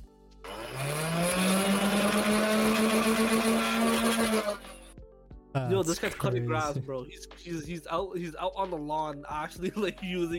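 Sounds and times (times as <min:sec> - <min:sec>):
motorized Nerf blaster flywheel motor whining: 0:00.5 - 0:04.9
speech: 0:05.7 - 0:10.3.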